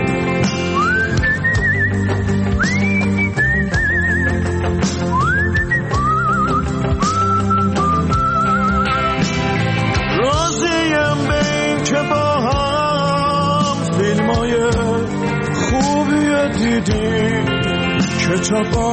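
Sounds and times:
steady instrumental music backing: 0.0 - 18.9
person whistling a lively melody: 0.6 - 9.2.

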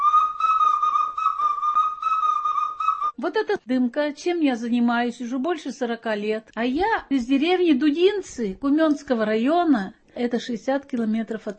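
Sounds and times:
shrill whistle blowing: 0.0 - 3.2
speech: 3.2 - 11.5.

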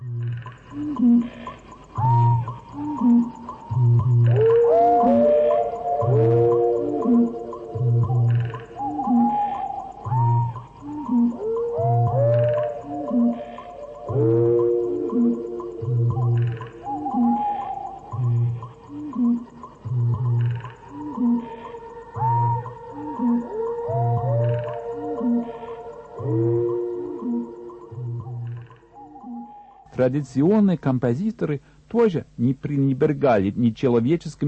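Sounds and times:
mosquitoes buzzing with a thin steady whine: 0.2 - 29.9
fox howling in wavering falling cries: 2.0 - 19.6, 20.8 - 29.9
speech: 30.1 - 34.4.

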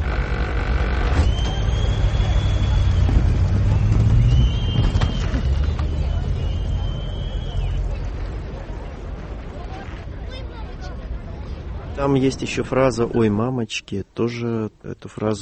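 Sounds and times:
dense market crowd murmur: 0.0 - 13.3
thin sustained high whistles: 1.1 - 8.0
speech: 12.0 - 15.4.

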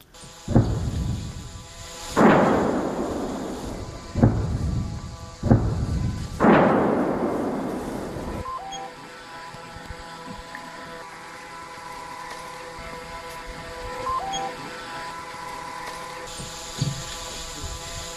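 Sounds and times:
heavy artillery blasts: 0.5 - 8.8.

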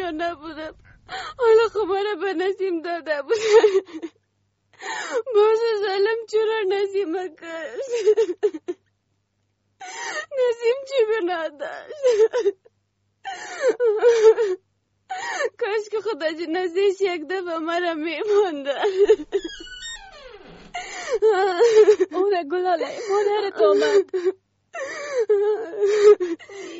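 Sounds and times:
woman crying and wailing: 0.0 - 4.1, 5.0 - 8.8, 9.8 - 12.6, 13.3 - 16.4, 17.8 - 26.7
speech: 0.2 - 4.2, 4.8 - 8.8, 9.8 - 19.7, 21.0 - 26.7
woman's gasping breaths: 0.7 - 1.4, 20.5 - 21.2, 24.8 - 26.7.

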